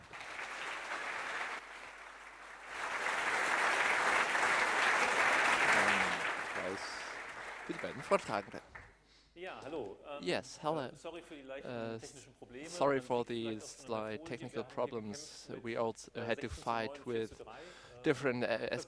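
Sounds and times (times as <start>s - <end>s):
audience applauding: 0.0s - 8.9s
speech: 7.9s - 8.7s, 9.4s - 18.8s.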